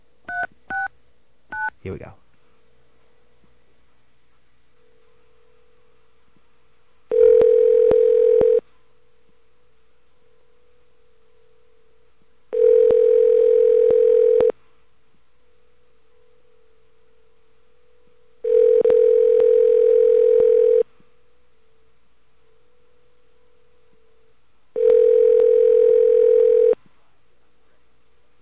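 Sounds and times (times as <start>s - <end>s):
speech: 1.8s - 2.2s
telephone line tone: 7.1s - 8.6s, 12.5s - 14.5s, 18.4s - 20.8s, 24.8s - 26.8s.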